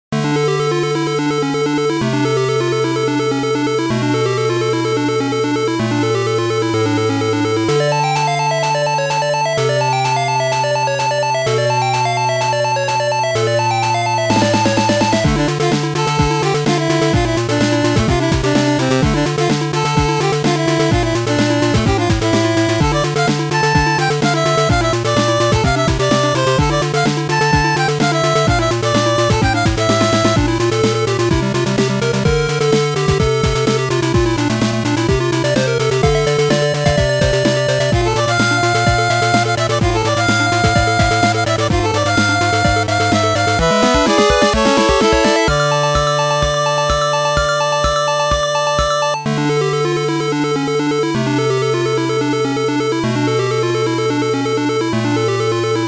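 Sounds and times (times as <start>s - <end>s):
8-bit chiptune music: 0.2s - 55.8s.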